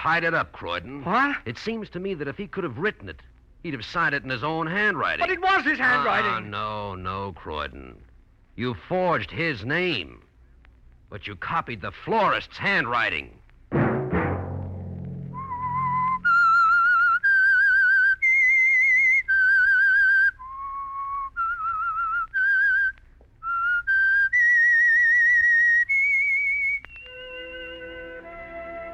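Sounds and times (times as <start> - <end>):
speech: 0.0 - 10.3, 11.1 - 13.9
short burst of musical chords: 13.7 - 16.3
solo whistled slow melody: 15.3 - 28.9.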